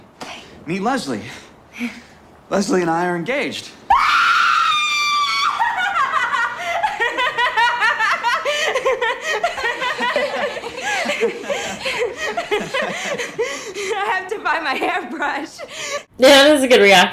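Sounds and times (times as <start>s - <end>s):
speech: 0.7s - 3.8s, 14.1s - 17.1s
loud high-pitched manic sustained scream: 3.9s - 5.9s
rapid choppy nervous laughter: 5.6s - 13.9s.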